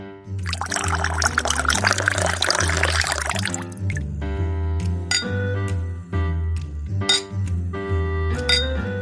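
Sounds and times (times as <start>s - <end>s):
2017 Pinot Noir pouring into a glass: 0.4s - 4.0s
low steady musical backing: 0.4s - 9.0s.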